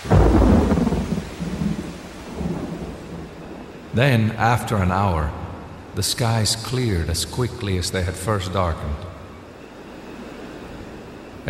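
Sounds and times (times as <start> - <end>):
loud rumbling thunder peal: 0.0 - 3.8
heavy driving rain: 0.0 - 11.4
speech: 4.0 - 5.4, 6.0 - 9.1.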